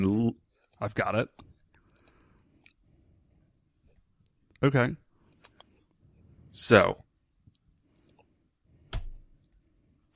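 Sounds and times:
speech: 0.0 - 1.5, 4.6 - 5.0, 6.6 - 7.0
computer mouse clicking: 1.8 - 2.8, 5.3 - 5.7, 7.5 - 8.3.

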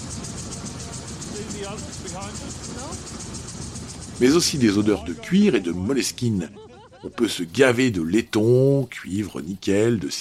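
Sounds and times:
vintage car engine running: 0.0 - 6.6
speech: 1.6 - 3.3, 4.2 - 10.2
laughter: 4.4 - 8.6.

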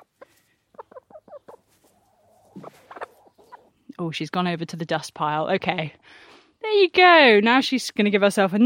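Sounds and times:
chicken clucking: 0.0 - 3.9
speech: 4.0 - 8.6.

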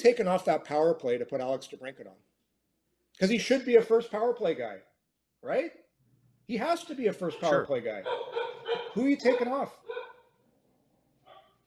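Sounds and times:
speech: 0.0 - 2.4, 3.2 - 5.8, 6.5 - 10.1
dog barking: 7.4 - 10.4, 11.2 - 11.6.

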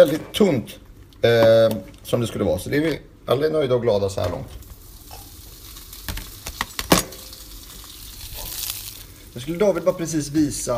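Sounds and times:
speech: 0.0 - 4.6, 9.4 - 10.7
bread sizzling in a hot frying pan: 4.5 - 10.7
sharp pops and clatters: 4.6 - 9.1.

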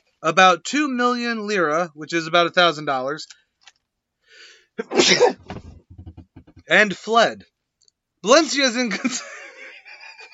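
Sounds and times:
speech: 0.2 - 3.4, 4.8 - 5.7, 6.7 - 7.5, 8.2 - 9.4
person sneezing after trying to hold it in: 4.8 - 5.5.

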